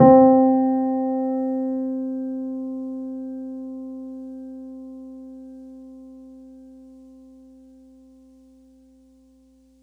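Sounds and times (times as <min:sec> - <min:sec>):
upright piano note C3: 0:00.0 - 0:05.1.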